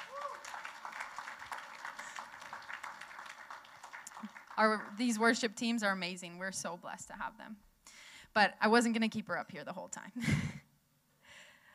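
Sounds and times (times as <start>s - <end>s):
audience applauding a worship team member: 0.0s - 5.4s
speech: 4.6s - 7.7s, 8.4s - 10.5s.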